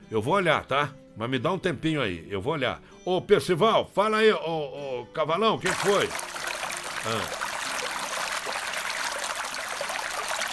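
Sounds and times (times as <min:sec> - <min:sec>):
speech: 0:00.1 - 0:06.4, 0:07.0 - 0:07.4
steady stream of water pouring and splashing: 0:05.6 - 0:10.5.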